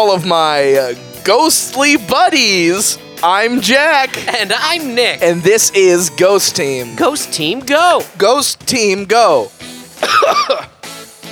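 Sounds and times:
speech: 0:00.0 - 0:10.7
laughter: 0:03.5 - 0:07.8, 0:10.0 - 0:10.7
harsh raspy cough: 0:10.0 - 0:10.8.

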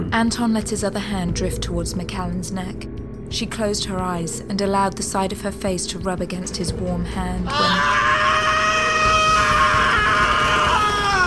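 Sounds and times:
speech: 0:00.2 - 0:08.2
man screaming in a spacecraft's medical bay: 0:07.5 - 0:11.2.

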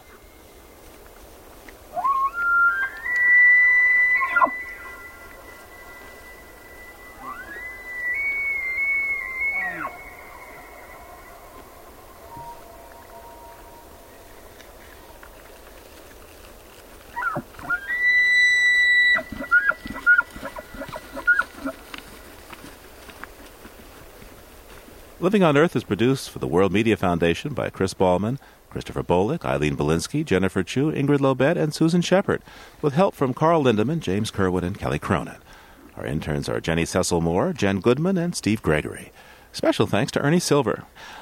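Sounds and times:
two elk bugling across open ground: 0:01.9 - 0:16.0, 0:17.0 - 0:22.7
speech: 0:25.2 - 0:35.4, 0:36.0 - 0:41.2.

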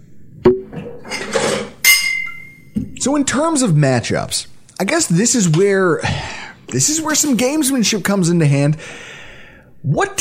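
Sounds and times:
glasses clinking: 0:01.0 - 0:02.8
speech: 0:03.0 - 0:09.2, 0:09.8 - 0:10.1.

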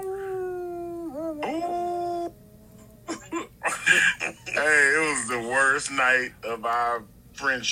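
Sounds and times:
person imitating a wolf howl: 0:00.0 - 0:03.5
laughter: 0:03.1 - 0:05.2
speech: 0:05.4 - 0:07.7.

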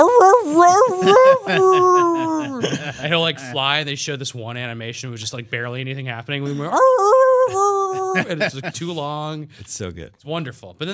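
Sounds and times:
man imitating dog howls, yelps and whimpers for a video game dog: 0:00.0 - 0:02.8, 0:06.5 - 0:08.4
laughter: 0:00.7 - 0:03.8, 0:06.4 - 0:09.2
speech: 0:03.1 - 0:10.9.

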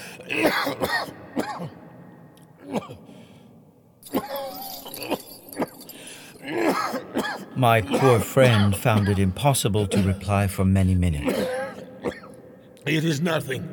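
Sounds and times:
person clearing throat: 0:00.0 - 0:01.8, 0:02.6 - 0:03.1, 0:04.0 - 0:05.8, 0:06.4 - 0:10.3, 0:11.2 - 0:12.4
person coughing: 0:00.0 - 0:01.8, 0:02.6 - 0:03.1, 0:04.0 - 0:05.8, 0:06.4 - 0:10.4, 0:11.2 - 0:12.4
speech: 0:00.2 - 0:01.8, 0:07.6 - 0:11.6, 0:12.9 - 0:13.7
short breaths: 0:03.0 - 0:03.6, 0:05.9 - 0:06.4.

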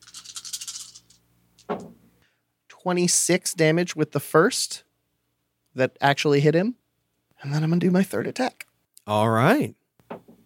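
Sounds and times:
dice shaken in a hand: 0:00.0 - 0:01.2
speech: 0:02.8 - 0:04.9, 0:05.8 - 0:06.8, 0:07.4 - 0:09.8.

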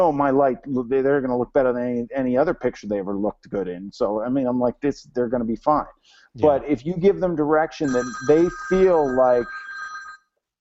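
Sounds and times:
speech: 0:00.0 - 0:09.6
mobile phone ringing with a short electronic ringtone: 0:07.8 - 0:10.3.

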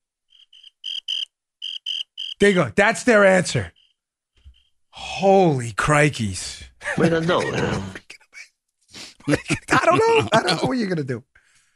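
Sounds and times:
cricket chirping: 0:00.3 - 0:02.6, 0:03.3 - 0:04.8
speech: 0:02.4 - 0:03.8, 0:05.2 - 0:08.0, 0:09.3 - 0:11.4
laughter: 0:06.8 - 0:08.5, 0:09.2 - 0:11.0.

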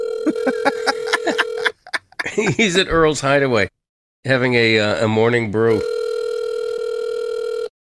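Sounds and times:
phone line electronic ring tone: 0:00.0 - 0:01.8, 0:05.8 - 0:07.7
laughter: 0:00.2 - 0:02.8
speech: 0:00.3 - 0:00.8, 0:02.4 - 0:06.0.

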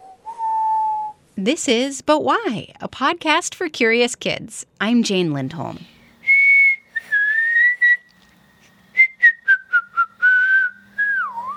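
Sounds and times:
children whistling a short bouncy theme tune: 0:00.0 - 0:01.2, 0:06.2 - 0:08.2, 0:09.0 - 0:11.5
speech: 0:01.4 - 0:05.9.

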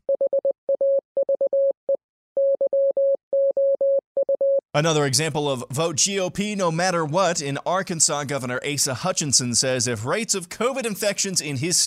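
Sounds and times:
steady clear tone keying out Morse code: 0:00.0 - 0:04.6
speech: 0:04.7 - 0:11.8.

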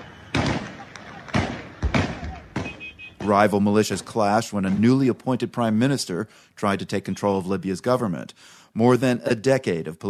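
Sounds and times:
gunshots among city buildings: 0:00.0 - 0:05.2
speech: 0:03.2 - 0:10.0.

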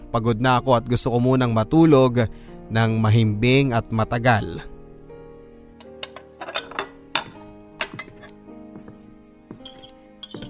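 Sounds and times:
speech: 0:00.1 - 0:04.7
pots, pans and utensils clattering during cooking: 0:05.8 - 0:08.4.

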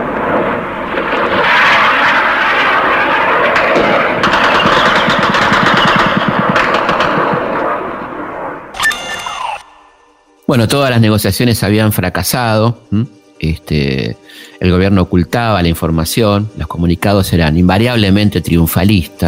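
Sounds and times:
anti-aircraft gunfire from shore batteries during an air attack on a bay: 0:00.0 - 0:09.6
high whine: 0:08.6 - 0:10.6
speech: 0:10.5 - 0:19.2.

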